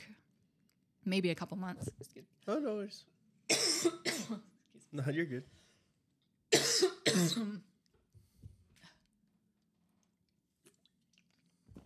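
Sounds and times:
speech: 1.0s - 5.6s, 7.2s - 7.7s
person with a tickle in the throat coughing: 3.5s - 4.5s, 6.5s - 7.7s.

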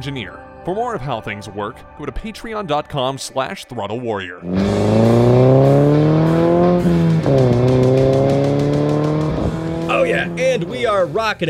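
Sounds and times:
speech: 0.0s - 6.1s, 10.1s - 11.4s
loud car engine revving hard: 4.4s - 11.2s.

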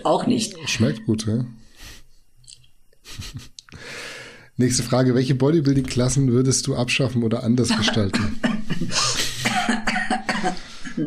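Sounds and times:
speech: 0.0s - 2.0s, 3.1s - 9.3s, 10.4s - 11.0s
laughter: 3.1s - 3.6s
person coughing: 7.9s - 11.0s.

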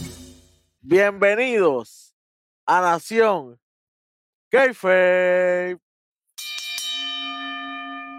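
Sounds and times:
speech: 0.9s - 2.0s, 2.7s - 3.6s, 4.5s - 5.8s
bell struck sharply and ringing: 6.4s - 8.1s.

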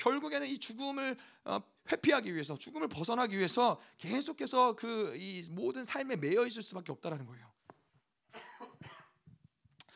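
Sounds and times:
speech: 0.0s - 7.6s
person clearing throat: 8.3s - 9.2s
person coughing raspily: 8.3s - 9.2s.

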